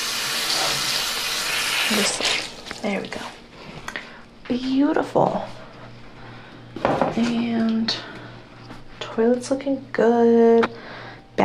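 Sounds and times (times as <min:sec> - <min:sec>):
water pouring from a bathroom sink faucet: 0:00.0 - 0:02.9
speech: 0:01.9 - 0:03.4, 0:04.5 - 0:05.6, 0:07.2 - 0:08.1, 0:09.2 - 0:10.8.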